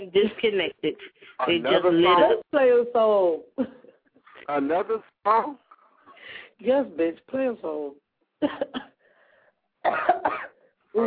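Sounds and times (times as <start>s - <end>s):
speech: 0.0s - 3.8s, 4.5s - 5.6s, 6.2s - 8.9s, 9.8s - 11.0s
person coughing harshly: 9.8s - 10.6s.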